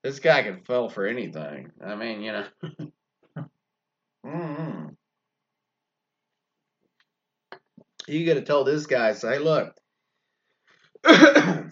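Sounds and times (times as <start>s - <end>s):
speech: 0.0s - 3.0s, 4.3s - 4.9s, 8.1s - 9.8s, 11.0s - 11.7s
harsh cough from one person: 2.5s - 2.9s, 11.0s - 11.7s.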